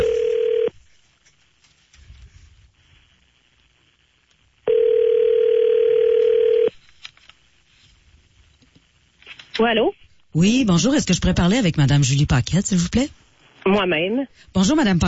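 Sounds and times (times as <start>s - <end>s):
telephone line tone as a call is dialed: 0.0s - 0.7s, 4.6s - 6.7s
speech: 9.6s - 15.0s.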